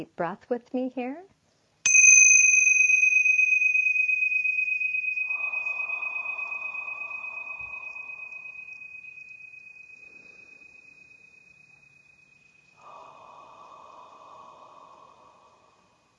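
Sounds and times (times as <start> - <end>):
speech: 0.0 - 1.4
tingsha bells ringing: 1.9 - 14.1.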